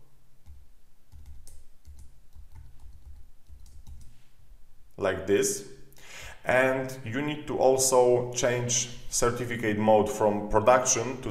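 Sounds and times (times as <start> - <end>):
low hiss: 0.0 - 11.2
computer keyboard keys clicking as a password is typed: 0.4 - 4.2
speech: 5.0 - 5.8, 6.4 - 11.2.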